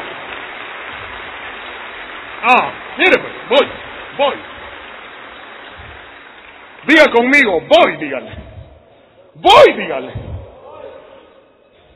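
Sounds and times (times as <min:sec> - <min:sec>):
crowd applauding: 0:00.0 - 0:08.3
speech: 0:02.4 - 0:04.5, 0:06.8 - 0:08.4, 0:09.4 - 0:10.2.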